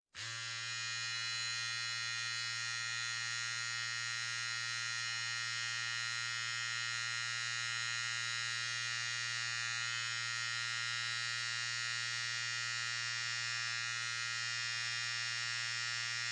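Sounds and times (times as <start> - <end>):
household electric razor turning on and running and turning off: 0.2 - 16.3.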